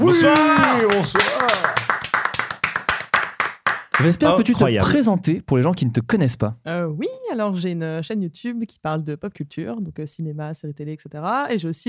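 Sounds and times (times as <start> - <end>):
person whooping: 0.0 - 1.8
loud hand claps: 0.0 - 4.3
speech: 0.1 - 1.7, 4.0 - 11.8.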